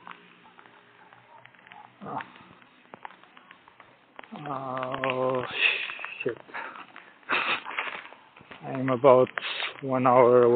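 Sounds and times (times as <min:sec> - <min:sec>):
heavy rain pattering: 0:00.0 - 0:10.5
speech: 0:02.0 - 0:02.4, 0:04.4 - 0:06.6, 0:08.7 - 0:10.5.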